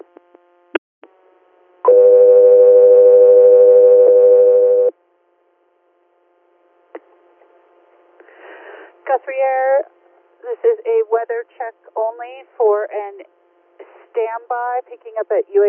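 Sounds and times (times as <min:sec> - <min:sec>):
long steady electronic radio dispatch tone for an air ambulance crew: 0:01.9 - 0:04.9
speech: 0:09.2 - 0:13.4, 0:14.1 - 0:15.6.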